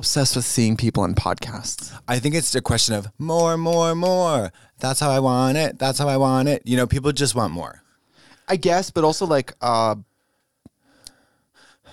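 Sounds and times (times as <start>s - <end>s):
speech: 0.0s - 7.8s, 8.5s - 10.1s
breathing against microphone: 4.5s - 4.8s, 7.9s - 8.5s, 10.1s - 11.9s.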